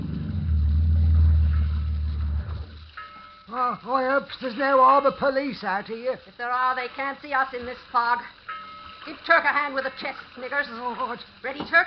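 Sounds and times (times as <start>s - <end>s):
motorboat engine rumbling on the water in fog: 0.0s - 2.9s
speech: 3.5s - 8.4s, 9.0s - 11.8s.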